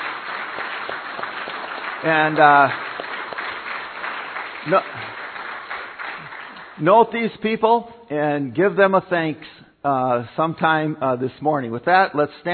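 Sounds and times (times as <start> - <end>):
crowd applauding: 0.0 - 6.8
speech: 2.0 - 2.8, 4.6 - 5.1, 6.8 - 12.5.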